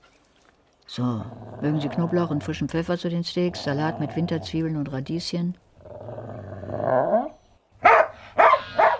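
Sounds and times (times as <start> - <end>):
dog growling: 1.0 - 2.7, 3.3 - 4.8, 5.8 - 7.4
speech: 1.0 - 5.6
dog barking: 7.8 - 8.9.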